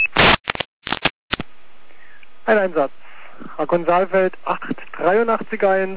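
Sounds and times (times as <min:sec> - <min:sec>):
dispatch radio static bursts: 0:00.1 - 0:01.5
crackling dispatch radio noise: 0:00.1 - 0:05.9
speech: 0:02.5 - 0:03.0, 0:03.6 - 0:05.9.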